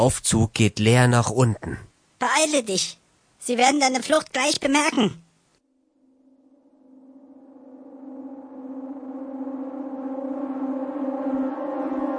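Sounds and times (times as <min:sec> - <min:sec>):
speech: 0:00.0 - 0:05.2
alarm siren with layered harmonic tones wailing: 0:06.2 - 0:12.1.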